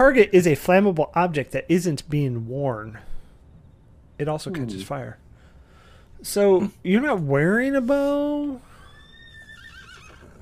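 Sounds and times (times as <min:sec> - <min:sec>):
speech: 0:00.0 - 0:03.1, 0:04.2 - 0:05.2, 0:06.2 - 0:08.7
horse whinnying: 0:08.7 - 0:10.4.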